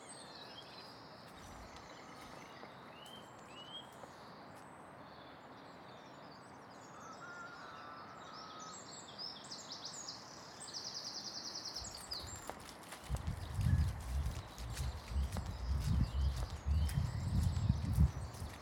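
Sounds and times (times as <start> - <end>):
birds chirping outdoors: 0.0 - 6.5, 9.2 - 18.5
small horse hooves stamping and shuffling on soft ground: 0.6 - 4.2, 11.8 - 18.5.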